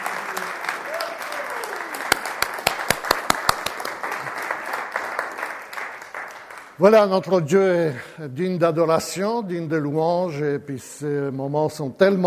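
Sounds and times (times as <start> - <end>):
congregation cheering: 0.0 - 6.5
congregation applauding at a church worship service: 0.0 - 7.3
speech: 6.8 - 12.2.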